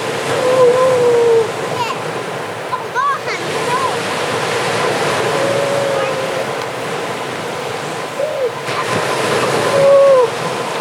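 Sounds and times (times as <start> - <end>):
steady surf at Horsey Gap: 0.0 - 10.8
wind at Horsey Gap: 0.0 - 10.8
grey seal giving wavering moaning calls at Horsey Gap: 0.3 - 1.6, 4.9 - 7.3, 8.1 - 10.8.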